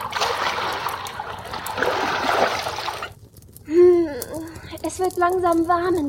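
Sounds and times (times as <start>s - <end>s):
water pouring into a wooden bathtub: 0.0s - 3.2s
speech: 5.0s - 6.0s.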